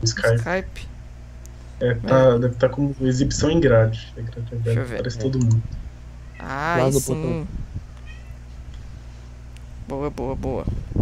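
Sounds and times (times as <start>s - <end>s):
speech: 0.0s - 0.9s, 1.8s - 5.8s, 6.4s - 7.7s, 9.9s - 10.9s
steady low electrical hum: 0.0s - 10.9s
cat meowing: 8.0s - 8.4s.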